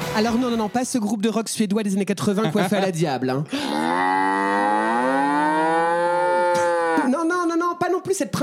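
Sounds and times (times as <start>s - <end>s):
speech: 0.1s - 4.0s, 8.1s - 8.4s
laughter: 2.2s - 3.7s
bull mooing and bellowing: 3.5s - 7.1s.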